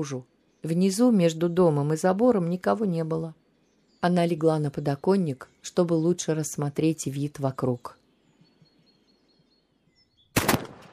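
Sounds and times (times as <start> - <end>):
speech: 0.0 - 3.4, 4.0 - 8.0
faint bird chirps: 0.0 - 10.4
loud gunshot with tail: 10.3 - 10.9.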